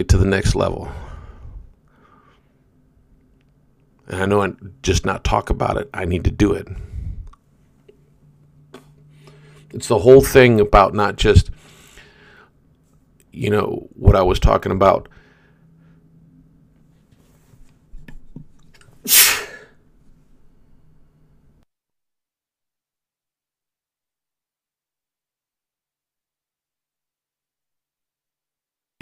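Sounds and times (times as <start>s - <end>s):
speech: 0.0s - 1.1s, 4.1s - 6.9s, 9.7s - 11.6s, 13.3s - 15.2s, 19.0s - 19.3s
low hum: 0.0s - 21.6s
loud sneeze: 19.0s - 19.8s.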